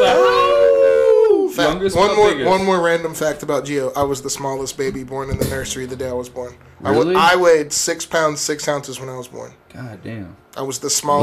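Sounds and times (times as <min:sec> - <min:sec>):
human voice howling in imitation of a wolf: 0:00.0 - 0:01.5
speech: 0:01.6 - 0:11.2.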